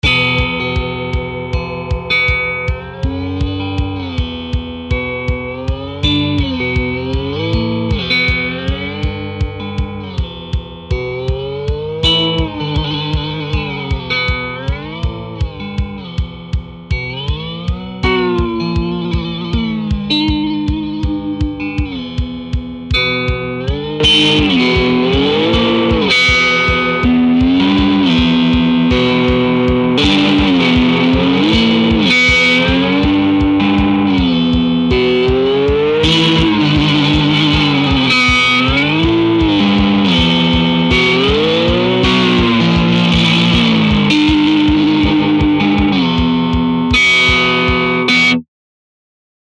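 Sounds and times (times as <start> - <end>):
Nordic blues music: 0.0 - 48.4.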